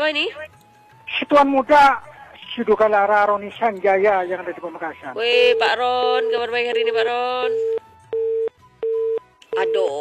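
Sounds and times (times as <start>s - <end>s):
speech: 0.0s - 0.6s, 1.2s - 7.8s, 9.6s - 9.9s
telephone call signal beeps: 7.6s - 9.9s.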